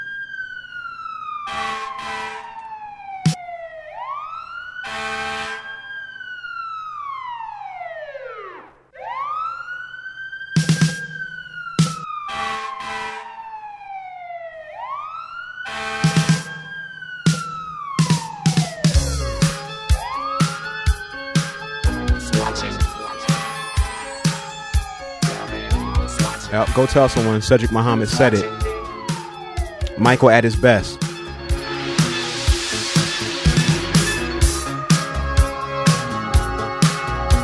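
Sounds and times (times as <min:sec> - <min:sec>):
fire truck sirens wailing: 0:00.0 - 0:37.4
fire truck horn blasts: 0:01.5 - 0:02.5, 0:04.8 - 0:05.7, 0:12.3 - 0:13.3, 0:15.7 - 0:16.5, 0:22.2 - 0:24.3, 0:25.2 - 0:28.8
speech: 0:26.8 - 0:28.7, 0:30.0 - 0:31.0.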